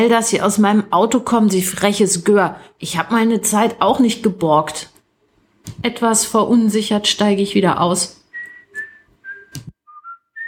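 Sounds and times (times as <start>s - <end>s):
speech: 0.0s - 5.0s, 5.6s - 8.2s
person whistling a short melody: 8.3s - 10.4s.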